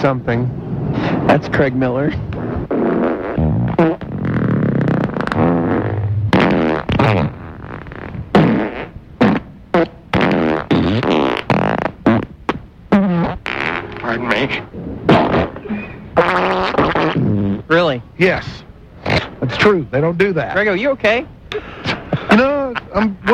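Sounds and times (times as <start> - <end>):
speech: 0.0 - 2.4, 14.2 - 14.8, 18.2 - 18.6, 19.5 - 21.7, 22.3 - 23.3
buzzy sputtering farts: 2.3 - 17.8, 19.0 - 19.4.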